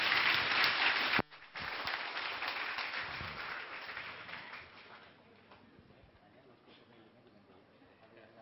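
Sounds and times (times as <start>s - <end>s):
crowd applauding: 0.0s - 5.2s.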